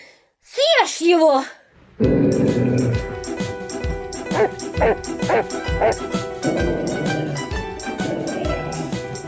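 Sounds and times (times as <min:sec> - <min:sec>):
speech: 0:01.0 - 0:03.2, 0:04.4 - 0:06.2
dog growling: 0:02.0 - 0:03.2, 0:04.3 - 0:09.2
dog barking: 0:04.3 - 0:06.0
dog yelping: 0:04.3 - 0:07.2.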